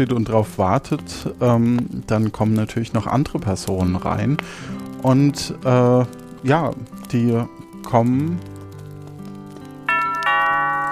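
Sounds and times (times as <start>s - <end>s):
speech: 0.0s - 8.5s
doorbell chiming with two clear tones as people arrive: 9.9s - 10.8s.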